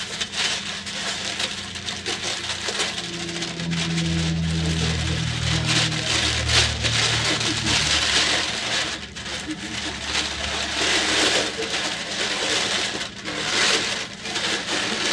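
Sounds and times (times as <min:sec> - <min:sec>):
paper being ripped up: 0:00.2 - 0:15.0
low rumble: 0:01.2 - 0:11.1.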